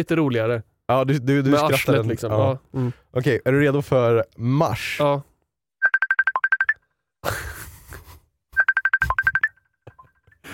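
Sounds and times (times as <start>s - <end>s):
speech: 0.0s - 5.3s
incoming FaceTime call ringtone from an internet meme: 5.8s - 6.8s, 8.6s - 10.3s.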